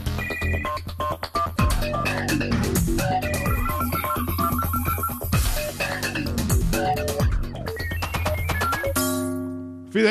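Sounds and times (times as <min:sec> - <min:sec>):
telephone-like beeping tones in a radio jingle: 0:00.2 - 0:00.8, 0:03.2 - 0:05.7
busy electronic radio jingle track with pulsing low beat: 0:00.2 - 0:10.1.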